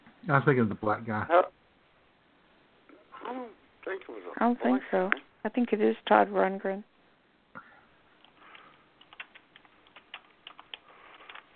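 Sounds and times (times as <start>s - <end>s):
speech: 0.2s - 1.6s, 4.4s - 6.9s
man typing on a computer keyboard: 8.2s - 11.5s.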